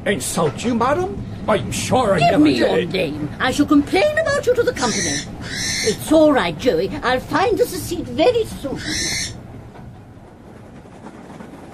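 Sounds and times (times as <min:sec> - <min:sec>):
train rolling along the rails: 0:00.0 - 0:11.7
speech: 0:00.1 - 0:09.4.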